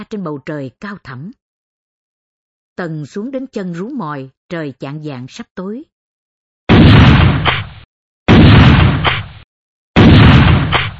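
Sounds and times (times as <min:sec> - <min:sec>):
speech: 0:00.0 - 0:01.4, 0:02.8 - 0:05.9
sharp rifle shots fired as a signal that the road is clear: 0:06.7 - 0:09.4, 0:10.0 - 0:10.9.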